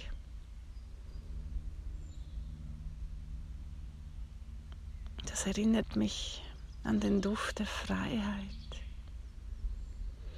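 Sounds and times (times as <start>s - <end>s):
soft bird chirp: 0.0s - 3.1s, 4.7s - 5.5s, 6.2s - 10.3s
distant airplane droning overhead: 0.0s - 10.3s
speech: 5.3s - 8.8s.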